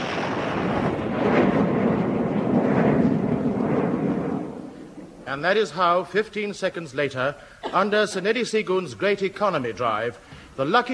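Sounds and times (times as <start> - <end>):
comic rocket launch sound effect roaring rumble: 0.0 - 5.6
speech: 5.3 - 10.9.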